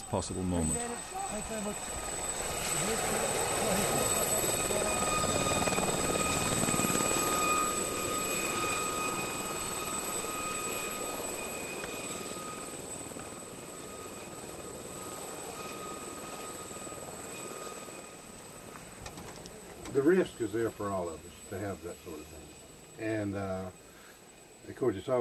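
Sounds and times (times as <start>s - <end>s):
high helicopter engine whine: 0.0s - 25.1s
speech: 0.1s - 2.2s, 2.8s - 5.1s, 20.0s - 23.8s, 24.7s - 25.1s
helicopter rotor blades thumping during a landing: 1.0s - 17.2s.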